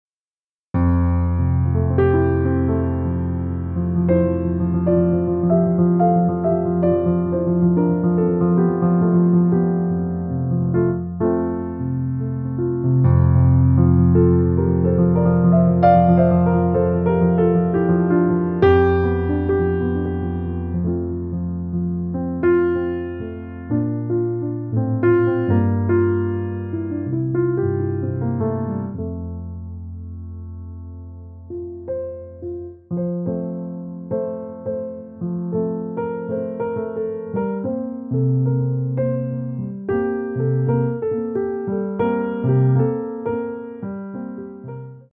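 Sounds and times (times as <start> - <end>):
atmospheric jazz piano for sleeping: 0.8 - 45.1.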